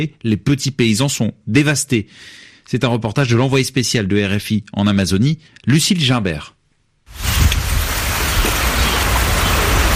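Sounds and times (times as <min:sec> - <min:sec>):
speech: 0:00.0 - 0:07.3
rain falling on forest: 0:07.1 - 0:09.9.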